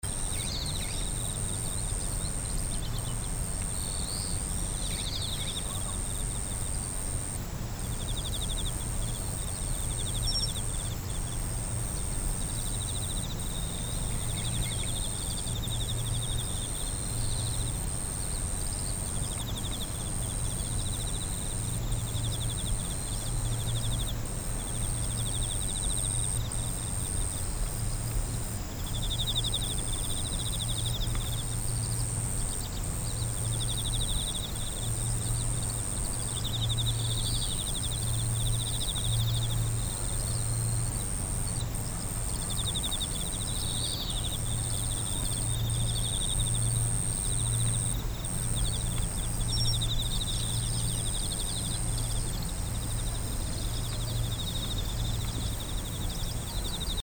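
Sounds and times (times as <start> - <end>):
insect singing: 0.1 - 57.0.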